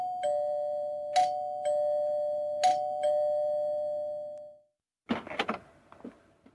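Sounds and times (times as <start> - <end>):
doorbell chiming at the front door: 0.0 - 4.6.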